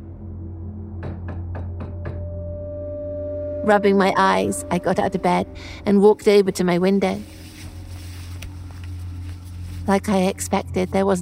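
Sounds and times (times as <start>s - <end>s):
soft knocks on a front door at night: 1.0s - 2.2s
speech: 3.6s - 7.4s, 9.9s - 11.2s.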